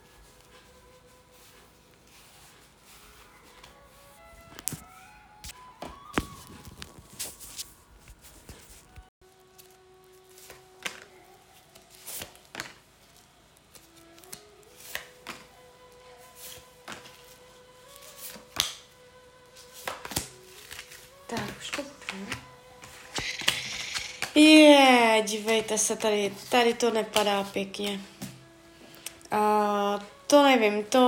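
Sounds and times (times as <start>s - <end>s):
tarot cards being shuffled for a couple's reading: 0.0s - 9.1s
speech: 24.4s - 24.6s, 25.2s - 28.1s, 29.4s - 31.0s.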